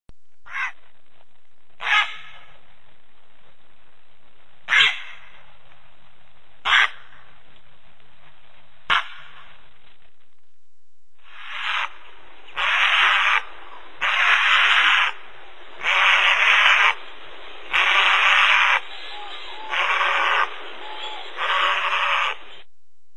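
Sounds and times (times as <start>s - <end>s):
heron calling: 1.8s - 2.5s, 4.7s - 5.4s, 6.6s - 7.2s, 11.2s - 17.1s, 17.7s - 22.6s.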